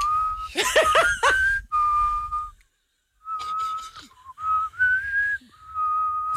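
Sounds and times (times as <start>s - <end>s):
person whistling: 0.0s - 2.6s, 3.2s - 6.3s
person laughing: 0.5s - 1.6s.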